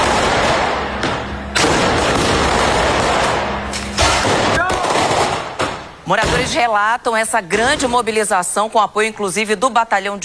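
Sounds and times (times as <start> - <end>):
loud sharp blasts: 0.0 - 6.6
speech: 6.4 - 10.2.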